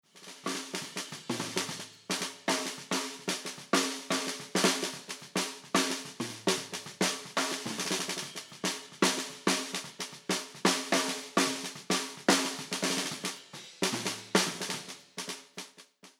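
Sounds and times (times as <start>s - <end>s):
snare drum hits with EQ: 0.2s - 15.6s.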